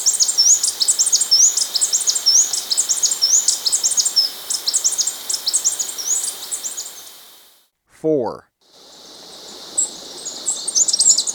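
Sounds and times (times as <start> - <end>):
blue-backed conebill song in Ecuador: 0.0 - 7.1, 9.4 - 11.3
speech: 8.0 - 8.5.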